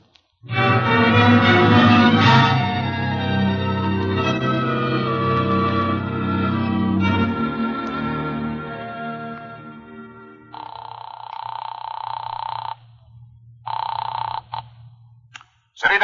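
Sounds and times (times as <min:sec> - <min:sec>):
sustained musical chord: 0:00.4 - 0:10.6
old-fashioned telephone bell ringing: 0:10.5 - 0:13.0, 0:13.7 - 0:14.7.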